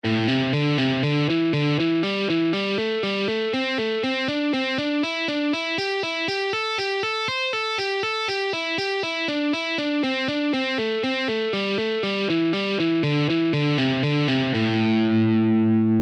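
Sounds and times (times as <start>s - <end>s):
guitar playing pentatonic alternate picking exercises: 0.0s - 16.0s.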